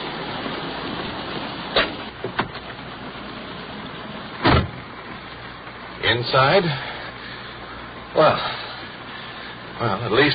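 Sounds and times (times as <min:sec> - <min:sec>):
steady hiss of rain: 0:00.0 - 0:10.3
police car door clicks and rattles: 0:01.8 - 0:02.8, 0:04.4 - 0:04.8
police car door slam: 0:04.4 - 0:04.8
speech: 0:06.1 - 0:06.9, 0:08.2 - 0:08.6, 0:09.8 - 0:10.3.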